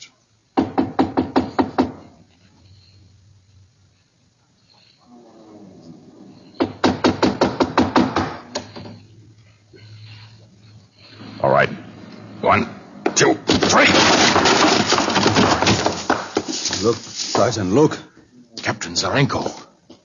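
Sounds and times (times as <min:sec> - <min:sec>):
quiet low noise: 0:00.0 - 0:20.0
loud knocking on the door of a ship's captain's cabin: 0:00.6 - 0:02.1, 0:06.6 - 0:08.4
speech: 0:16.9 - 0:18.1, 0:19.0 - 0:19.7.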